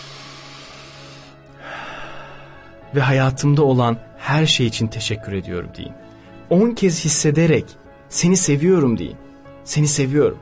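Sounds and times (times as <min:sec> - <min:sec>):
deep breath in: 0:01.6 - 0:02.8
speech: 0:02.9 - 0:10.4.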